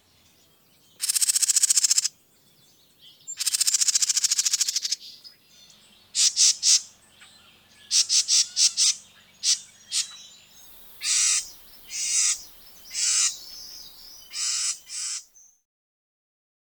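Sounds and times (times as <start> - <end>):
bird calls: 0.0 - 15.6.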